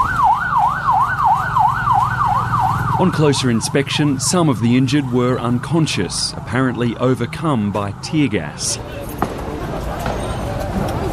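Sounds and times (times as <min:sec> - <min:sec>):
ambulance siren on a street: 0:00.0 - 0:05.5
low rumble of road noise: 0:00.0 - 0:11.1
speech: 0:03.0 - 0:09.0.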